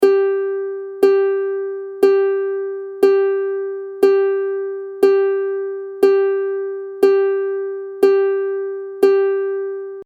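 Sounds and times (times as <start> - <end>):
ukulele strings tuned GCEA with high G: 0.0 - 10.0.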